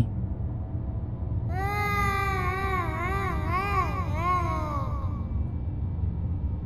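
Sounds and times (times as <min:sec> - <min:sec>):
low hum: 0:00.0 - 0:06.6
person sobbing: 0:01.5 - 0:05.4.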